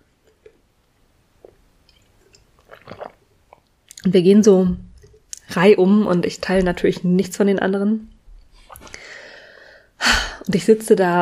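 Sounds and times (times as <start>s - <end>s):
person sipping water: 1.3s - 4.0s, 8.6s - 9.2s
slurping and swallowing water: 1.4s - 4.1s
speech: 4.0s - 4.9s, 5.5s - 8.1s, 10.5s - 11.2s.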